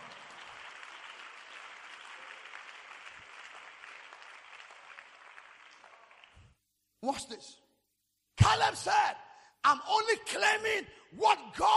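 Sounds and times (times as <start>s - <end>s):
large crowd applauding: 0.0s - 6.6s
speech: 7.0s - 7.6s, 8.5s - 11.7s.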